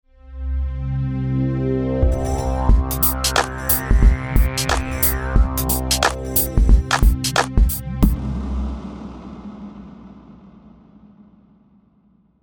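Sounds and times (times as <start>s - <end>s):
ambient atmosphere: 1.6s - 9.4s
music stingers: 2.0s - 8.3s.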